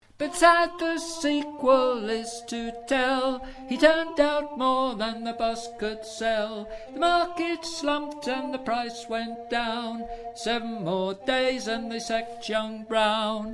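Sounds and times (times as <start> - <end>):
alto voice singing: 0.0 - 13.5.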